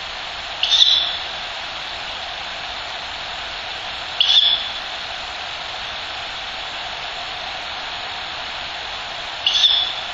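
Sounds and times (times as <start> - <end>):
background hiss: 0.0 - 10.1
Ural owl chick hoarse hissing screeches: 0.6 - 1.3, 4.2 - 4.8, 9.4 - 10.1.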